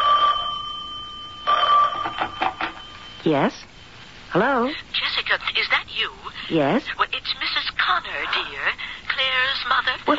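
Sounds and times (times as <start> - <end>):
telephone ringing with electronic trill: 0.0 - 3.3
speech: 3.2 - 3.7, 4.3 - 10.1.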